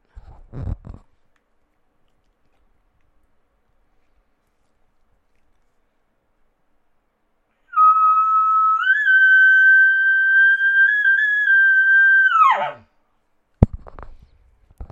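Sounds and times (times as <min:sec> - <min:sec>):
elk locate bugle blown on a latex call: 0:07.7 - 0:12.8.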